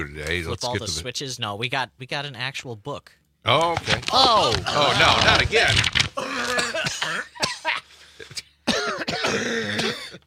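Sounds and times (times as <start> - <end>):
speech: 0.0 - 6.3
person clearing throat: 6.2 - 10.2
person coughing: 6.2 - 10.2.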